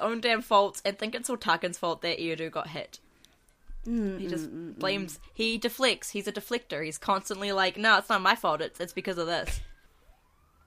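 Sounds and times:
speech: 0.0 - 3.0, 3.8 - 9.7
emergency vehicle siren: 3.6 - 10.6.

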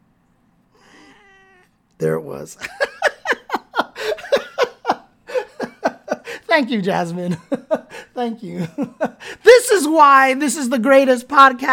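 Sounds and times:
cat meowing loudly: 0.8 - 1.8
speech: 2.0 - 2.9, 6.6 - 11.7
laughter: 2.6 - 6.4.

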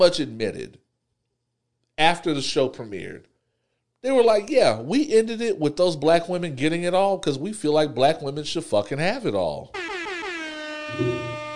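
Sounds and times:
speech: 0.0 - 0.8, 2.0 - 3.3, 4.0 - 9.8, 10.9 - 11.3
air horn blast: 9.7 - 11.5.

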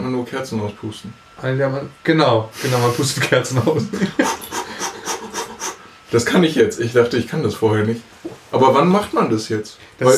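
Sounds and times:
speech: 0.2 - 4.6, 6.1 - 10.1
laughter: 3.0 - 5.8
voice imitating rapid panting breaths of childbirth preparation: 4.2 - 5.9.

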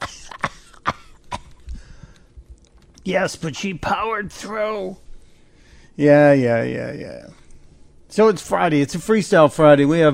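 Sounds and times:
woman coughing: 0.0 - 1.6
speech: 3.1 - 5.0, 6.0 - 7.4, 8.1 - 10.1.

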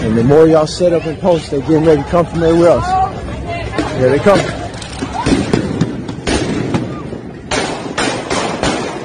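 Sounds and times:
speech: 0.2 - 3.0, 4.0 - 4.6
real gunshots: 4.8 - 9.0.

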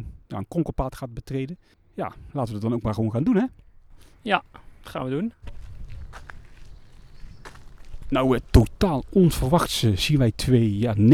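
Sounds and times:
speech: 0.3 - 6.3, 8.1 - 11.1
crunchy footsteps walking along a path: 3.6 - 11.1.

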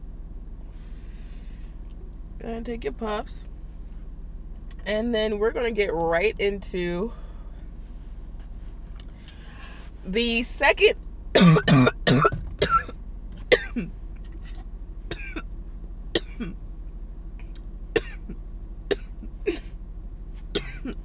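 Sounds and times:
speech: 2.4 - 3.5, 4.8 - 7.2, 10.0 - 12.3
harsh coughing: 11.4 - 12.9, 13.5 - 13.9, 15.1 - 15.5, 16.2 - 16.6, 18.0 - 19.8, 20.6 - 21.0.

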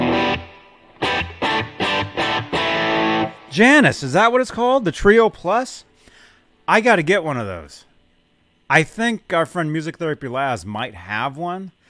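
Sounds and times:
electric guitar chords with reverb added: 0.0 - 3.5
speech: 3.6 - 5.9, 6.7 - 7.9, 8.7 - 11.8.

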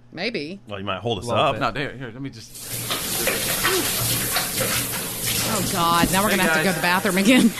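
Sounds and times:
speech: 0.2 - 7.5
shower water running: 2.5 - 7.5.

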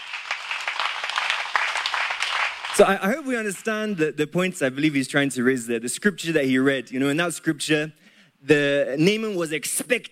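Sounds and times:
crowd applauding with many hands clapping: 0.0 - 4.0
speech: 2.8 - 10.1.

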